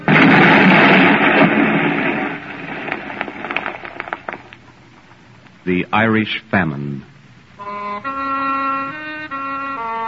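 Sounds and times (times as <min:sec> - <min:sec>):
loud explosion: 0:00.0 - 0:04.4
debris crackling and popping: 0:00.0 - 0:05.1
speech: 0:05.7 - 0:07.1.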